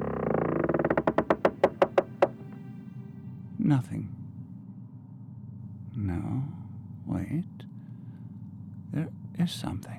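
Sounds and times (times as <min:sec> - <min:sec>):
door hinge creaking: 0:00.0 - 0:02.6
speech: 0:03.7 - 0:04.2, 0:07.3 - 0:07.6, 0:09.4 - 0:09.9.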